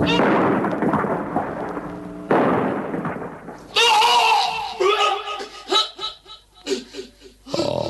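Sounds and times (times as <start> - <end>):
bomb explosions blowing up an ammunition store: 0.0 - 4.8.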